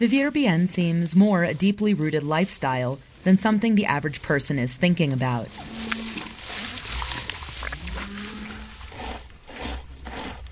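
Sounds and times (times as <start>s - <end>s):
speech: 0.0s - 6.0s
outdoor rustling and shuffling: 0.0s - 9.4s
dairy cows in a herd mooing: 5.5s - 10.3s.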